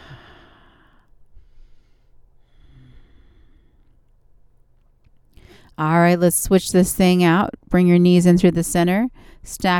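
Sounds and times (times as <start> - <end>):
slow deep breathing during a yoga spinal twist: 0.0 - 4.5, 5.3 - 5.8
speech: 5.8 - 9.7.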